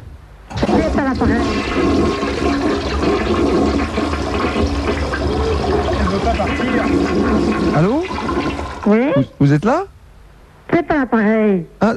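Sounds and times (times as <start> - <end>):
toilet flushing: 0.5 - 9.1
speech: 1.0 - 2.2, 6.2 - 10.0, 10.7 - 11.9.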